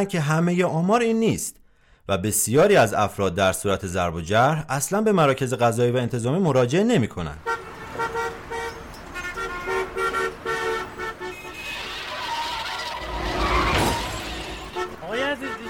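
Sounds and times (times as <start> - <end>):
speech: 0.0 - 8.1
car horn blasts: 7.4 - 15.6
tires screeching as a car brakes: 7.4 - 15.6.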